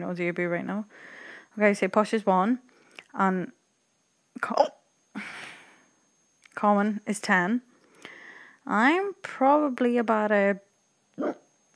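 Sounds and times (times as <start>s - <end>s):
speech: 0.0s - 3.6s, 4.4s - 5.4s, 6.6s - 7.7s, 8.7s - 11.4s
person hiccupping: 11.2s - 11.4s.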